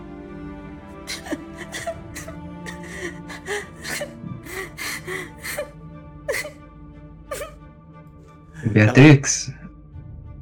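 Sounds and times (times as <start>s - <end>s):
woman sobbing behind a closed door: 1.0s - 6.6s, 7.3s - 7.6s
speech: 8.7s - 9.6s.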